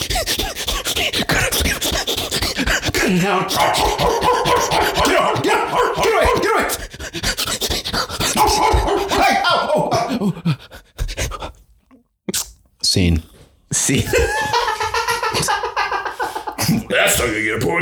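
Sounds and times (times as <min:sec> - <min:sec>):
man imitating a cyclist chased by a barking dog in a game: 0:00.0 - 0:10.4
laughter: 0:03.0 - 0:06.8, 0:08.3 - 0:10.6, 0:13.9 - 0:17.5
speech: 0:03.1 - 0:07.1.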